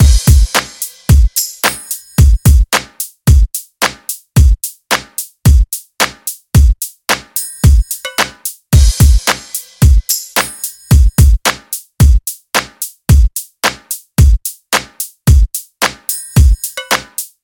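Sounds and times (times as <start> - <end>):
hip hop drum loop: 0.0 - 17.4.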